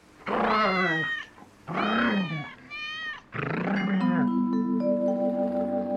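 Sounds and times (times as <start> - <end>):
cat meowing while being chased: 0.4 - 3.3
sustained musical tones: 3.8 - 5.9.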